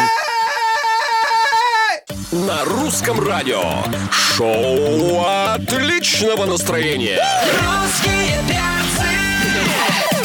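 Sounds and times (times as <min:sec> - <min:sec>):
band's high-pitched group scream: 0:00.0 - 0:02.1
speech: 0:02.5 - 0:10.1.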